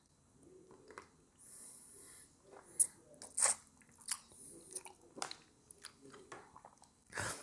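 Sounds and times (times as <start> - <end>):
wet chewing of a grape: 2.4 - 7.0
spitting out a grape seed: 2.7 - 3.7.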